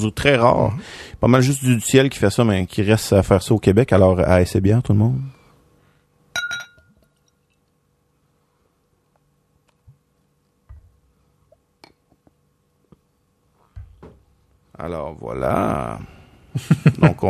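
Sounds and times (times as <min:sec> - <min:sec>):
speech: 0:00.0 - 0:05.4, 0:14.8 - 0:17.2
bright glassy clink of a twist-off beer bottle cap opened: 0:06.3 - 0:07.6
laughter: 0:16.6 - 0:17.2.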